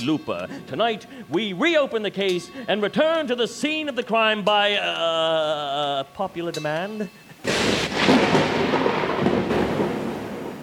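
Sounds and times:
speech: 0:00.0 - 0:08.4
steady rain: 0:07.3 - 0:10.6
thunder rumbling: 0:07.4 - 0:10.6.

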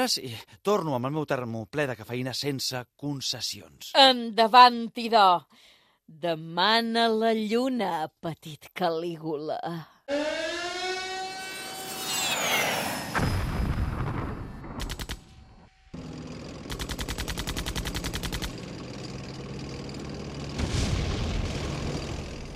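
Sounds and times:
speech: 0:00.0 - 0:10.5
air-raid siren wailing: 0:10.1 - 0:13.6
heavy artillery explosions: 0:12.2 - 0:15.7, 0:20.4 - 0:22.5
rapid machine-gun bursts: 0:14.8 - 0:15.2, 0:16.6 - 0:18.8.

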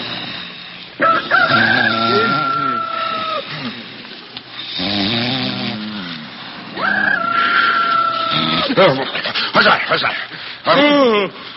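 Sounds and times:
rooster crowing: 0:01.0 - 0:03.6, 0:06.8 - 0:08.6
laughter: 0:06.8 - 0:11.3.

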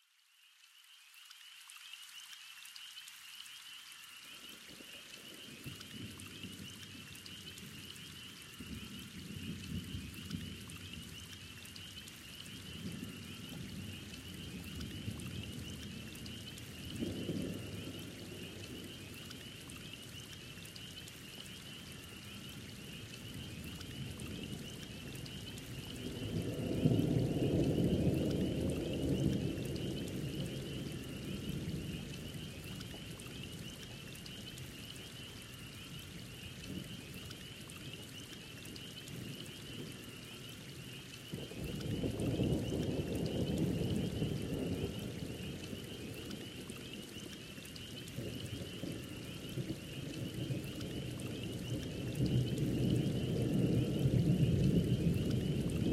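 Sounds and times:
gentle thunderstorm: 0:00.8 - 0:55.9.

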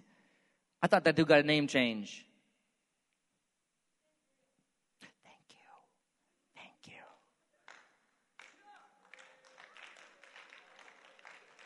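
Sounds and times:
speech: 0:00.8 - 0:02.3
crowd clapping slowly: 0:07.6 - 0:11.6.

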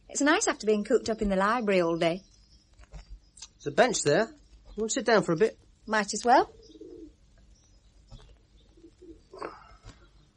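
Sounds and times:
faint outdoor noise: 0:00.0 - 0:10.3
speech: 0:00.2 - 0:02.3, 0:03.6 - 0:06.6
pigeons cooing: 0:06.4 - 0:07.2, 0:08.1 - 0:10.3.

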